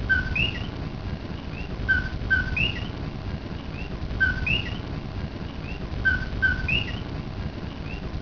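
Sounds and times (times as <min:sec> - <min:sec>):
coqui frog calling: 0:00.0 - 0:00.8, 0:01.5 - 0:03.0, 0:03.7 - 0:04.8, 0:05.6 - 0:07.1, 0:07.8 - 0:08.1
steady low background noise: 0:00.0 - 0:08.2.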